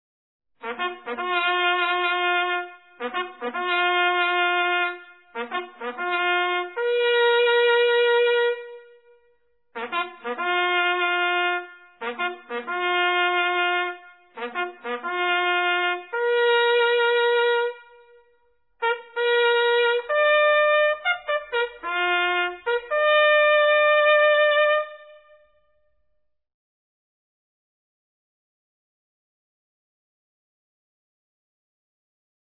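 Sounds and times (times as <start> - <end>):
bugle call: 0.6 - 9.0, 9.8 - 18.2, 18.8 - 25.5.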